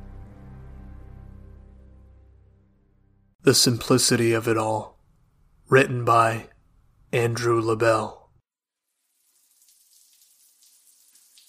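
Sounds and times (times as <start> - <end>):
speech: 3.4 - 5.0, 5.7 - 6.5, 7.1 - 8.2
shower water running: 8.8 - 11.4.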